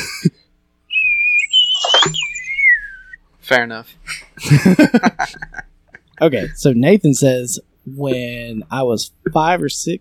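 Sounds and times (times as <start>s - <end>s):
person trying to whistle with a thin wavering tone: 0.9s - 3.2s
speech: 3.5s - 5.6s, 6.2s - 9.9s
laughter: 4.4s - 6.0s.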